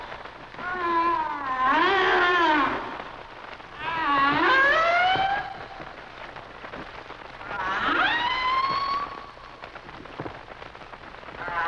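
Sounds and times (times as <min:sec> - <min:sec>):
humpback whale song with harmonic wails sliding upward: 0:00.6 - 0:02.9, 0:03.8 - 0:05.9, 0:07.4 - 0:09.3, 0:11.4 - 0:11.6.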